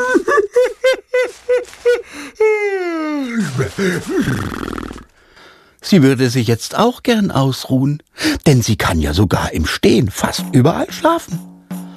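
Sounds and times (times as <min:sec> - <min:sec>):
laughter: 0:00.0 - 0:02.1
long voiced yawn: 0:02.4 - 0:05.1
speech: 0:03.8 - 0:04.8, 0:05.9 - 0:11.5.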